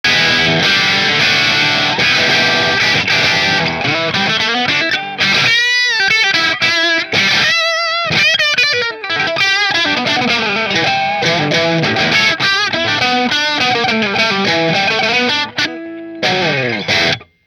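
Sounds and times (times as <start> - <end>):
McNaught Custom Guitars Vintage Single Cut guitar on bridge pickup through Marshall amplifier: 0.0 - 17.4.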